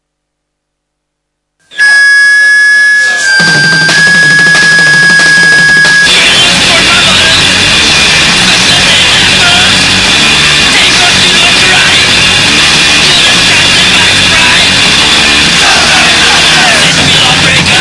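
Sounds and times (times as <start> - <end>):
electronic doorbell ringing: 1.8 - 6.1
dense noisy wash: 6.1 - 17.7.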